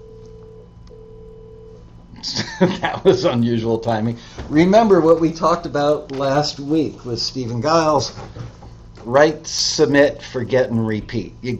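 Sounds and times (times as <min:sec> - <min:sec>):
telephone tone beeps: 0:00.0 - 0:01.8
low constant hum: 0:00.0 - 0:11.5
laughter: 0:02.2 - 0:03.4
speech: 0:02.2 - 0:11.5.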